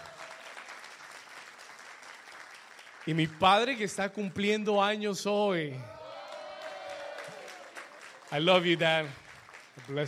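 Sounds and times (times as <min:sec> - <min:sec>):
church audience applause: 0:00.0 - 0:03.9, 0:05.9 - 0:10.0
speech: 0:03.1 - 0:06.0, 0:08.3 - 0:09.2, 0:09.8 - 0:10.0.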